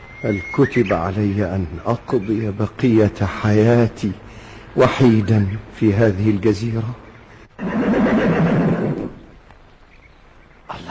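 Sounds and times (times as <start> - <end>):
speech: 0.2 - 7.0
horse whinnying: 7.6 - 9.3.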